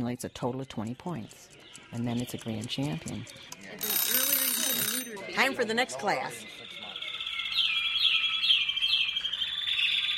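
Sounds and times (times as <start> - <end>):
speech: 0.0 - 4.0, 5.4 - 6.5
caged show birds singing at a bird show: 0.0 - 10.1.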